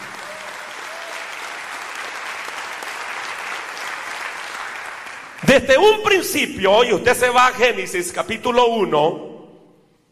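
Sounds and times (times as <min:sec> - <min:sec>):
church audience applauding: 0:00.0 - 0:05.6
speech: 0:05.4 - 0:09.3.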